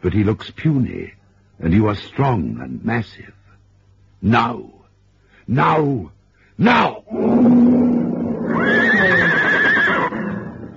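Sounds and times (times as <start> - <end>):
speech: 0.0 - 3.4, 4.2 - 4.8, 5.5 - 7.8
horse whinnying: 7.8 - 10.7.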